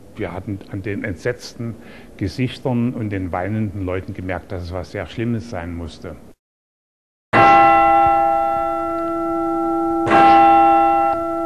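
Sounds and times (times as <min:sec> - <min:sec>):
speech: 0:00.2 - 0:06.3
tower clock bells striking the half hour: 0:07.4 - 0:11.4.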